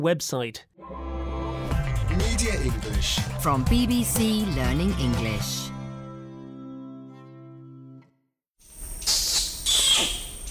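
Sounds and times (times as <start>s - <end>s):
speech: 0.0s - 1.1s, 2.1s - 5.8s
orangutan communicative kiss squeaks: 9.0s - 10.4s.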